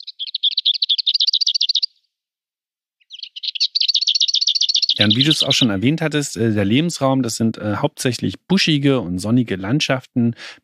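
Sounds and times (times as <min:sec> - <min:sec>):
lesser whitethroat singing dry rapid rattling trills: 0:00.0 - 0:02.0, 0:03.0 - 0:05.8
speech: 0:05.0 - 0:10.6.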